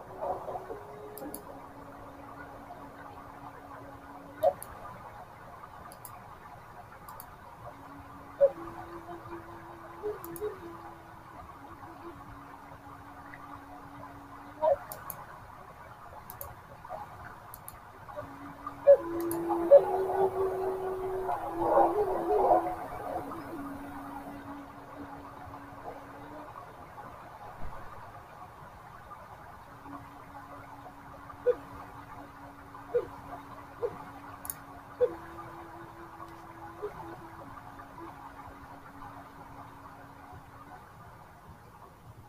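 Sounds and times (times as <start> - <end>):
steady rain: 0.0 - 42.2
soft breathy Native American flute tones: 7.8 - 14.9, 18.1 - 26.6, 32.6 - 39.2.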